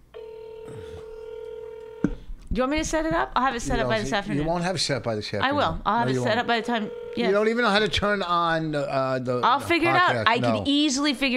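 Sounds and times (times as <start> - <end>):
second household electronic telephone ringing: 0.1 - 2.3, 6.2 - 7.5
speech: 2.6 - 11.3.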